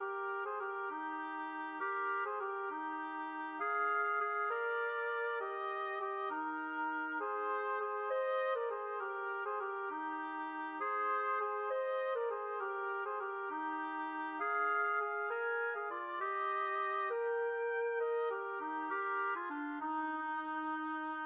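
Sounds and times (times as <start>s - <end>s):
clarinet playing in a duet with oboe: 0.0s - 21.2s.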